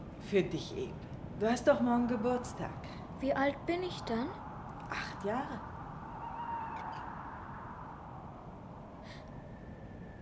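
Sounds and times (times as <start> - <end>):
steady rushing hiss: 0.0 - 10.2
speech: 0.3 - 5.7
owl hooting mournfully: 2.9 - 10.2.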